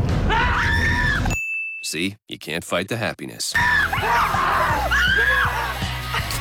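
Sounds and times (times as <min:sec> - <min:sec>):
several people screaming in fright: 0:00.2 - 0:01.4, 0:03.6 - 0:06.3
speech: 0:01.9 - 0:05.4.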